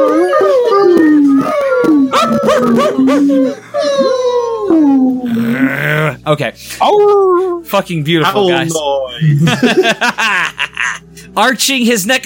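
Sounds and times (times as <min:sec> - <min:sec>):
several human voices imitating a whining puppy: 0:00.0 - 0:07.7
speech: 0:02.9 - 0:04.1, 0:06.3 - 0:12.2
laughter: 0:09.2 - 0:11.2.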